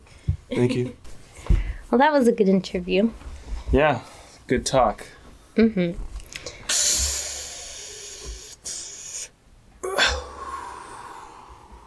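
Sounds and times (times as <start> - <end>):
speech: 0.5 - 6.1
breathy inhales of a person miming drawing on a cigarette: 6.4 - 9.3, 10.0 - 11.8.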